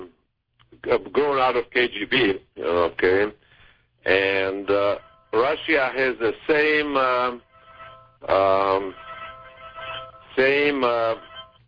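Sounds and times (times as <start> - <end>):
speech: 0.8 - 3.4, 4.0 - 7.5, 8.2 - 9.0, 10.4 - 11.3
phone ringing: 4.1 - 11.6.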